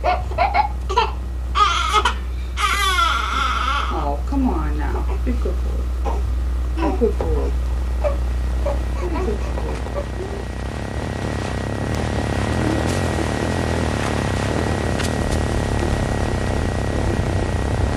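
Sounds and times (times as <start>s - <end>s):
baby crying: 0.0s - 4.1s, 8.0s - 10.4s
steady low hum: 0.0s - 17.9s.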